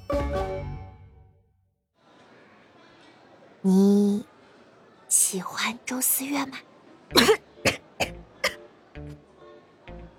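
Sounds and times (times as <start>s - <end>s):
speech: 3.6s - 4.0s, 5.4s - 7.4s
young person coughing after choking on a mouthful of food: 7.2s - 8.6s.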